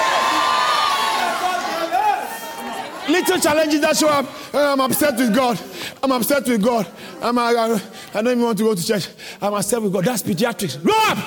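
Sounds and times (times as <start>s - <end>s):
large church audience screaming and cheering: 0.0s - 4.2s
speech: 3.1s - 11.2s.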